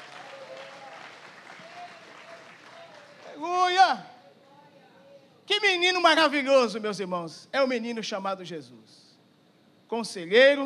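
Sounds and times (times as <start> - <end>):
congregation applauding: 0.0 - 3.6
speech: 5.7 - 9.1, 9.9 - 10.6.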